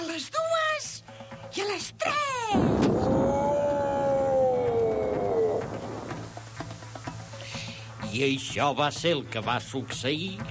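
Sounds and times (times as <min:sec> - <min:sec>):
speech: 0:01.8 - 0:02.7, 0:08.2 - 0:10.5
quiet low rhythmic thuds: 0:02.6 - 0:10.5
donkey braying: 0:03.3 - 0:06.4.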